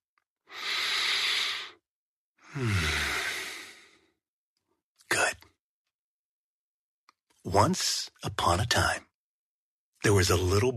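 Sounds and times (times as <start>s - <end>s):
deep breath: 0.5s - 1.8s, 2.4s - 4.2s
speech: 2.6s - 3.0s, 7.5s - 9.1s, 10.0s - 10.7s.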